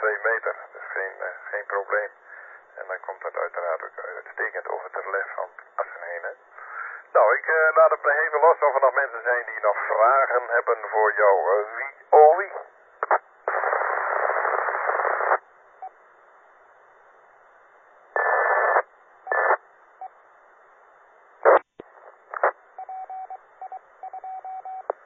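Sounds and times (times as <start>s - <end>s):
band-limited radio hiss and crackle: 0.0s - 22.8s
speech: 0.2s - 0.7s, 1.3s - 2.2s, 2.8s - 6.5s, 7.1s - 13.2s
beep tones on a phone line over a 2-meter amateur radio link: 22.8s - 25.0s.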